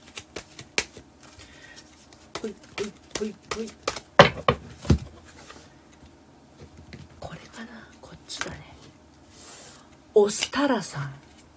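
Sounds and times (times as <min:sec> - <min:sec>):
oracle cards shuffled by hand: 0:00.0 - 0:04.1
speech: 0:02.4 - 0:04.5, 0:10.2 - 0:11.2.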